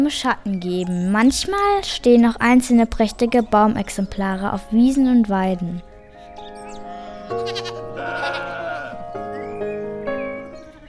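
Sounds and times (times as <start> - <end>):
speech: 0.0 - 5.9, 7.3 - 7.8
sheep bleating: 6.3 - 9.2.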